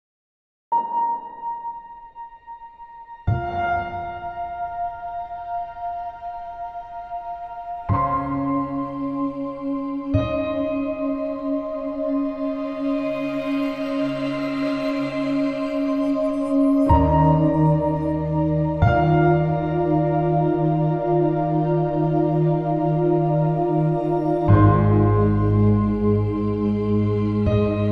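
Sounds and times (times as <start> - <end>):
piano: 0.7 - 27.9
synth pads: 2.6 - 27.9.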